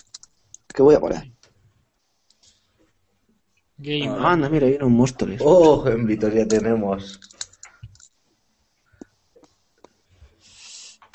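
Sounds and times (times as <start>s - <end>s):
typing on a fairly large computer keyboard: 0.0s - 0.7s, 6.5s - 8.2s
speech: 0.8s - 1.4s, 3.8s - 7.3s
short breathy hiss: 10.4s - 11.1s.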